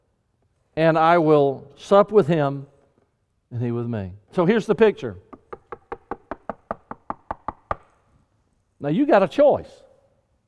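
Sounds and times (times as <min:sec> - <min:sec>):
speech: 0:00.8 - 0:02.7, 0:03.5 - 0:05.2, 0:08.8 - 0:09.8
firm knocks on a wooden door: 0:05.3 - 0:07.9.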